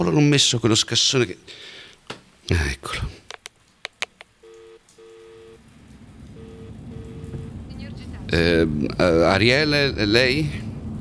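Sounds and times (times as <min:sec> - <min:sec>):
speech: 0:00.0 - 0:01.8, 0:02.5 - 0:03.2, 0:08.3 - 0:10.6
heavy rain pouring down at the Frejus fountain in Piazza Statuto: 0:00.0 - 0:11.0
sharp clicks: 0:03.2 - 0:04.9
paired telephone tones: 0:04.4 - 0:05.6, 0:06.4 - 0:07.6.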